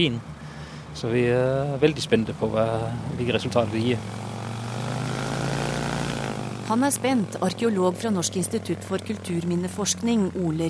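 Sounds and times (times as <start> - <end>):
speech: 0.0 - 0.3, 1.0 - 4.2, 6.7 - 10.6
propeller plane engine droning while taxiing toward the runway: 0.0 - 10.6.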